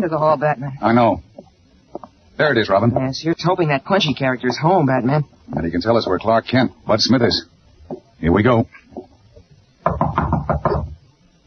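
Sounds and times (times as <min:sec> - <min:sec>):
speech: 0:00.0 - 0:01.3, 0:02.4 - 0:09.1
firm knocking on a door: 0:09.8 - 0:11.0.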